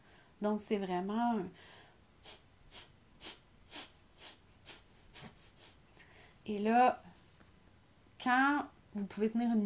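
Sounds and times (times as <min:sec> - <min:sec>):
speech: 0:00.4 - 0:02.4, 0:06.5 - 0:07.1, 0:08.2 - 0:09.6
forceful diaphragmatic exhalations through the nose in a breathing exercise: 0:01.6 - 0:06.4.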